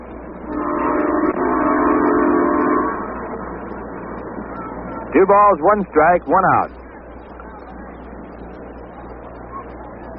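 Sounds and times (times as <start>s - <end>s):
passing train horn blast: 0.4s - 3.3s
speech: 5.2s - 6.8s.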